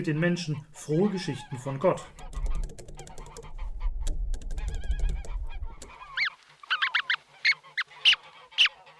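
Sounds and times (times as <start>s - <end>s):
speech: 0.0s - 2.2s
flock of geese cackling and honking: 0.2s - 2.6s, 3.2s - 4.0s, 4.6s - 8.9s.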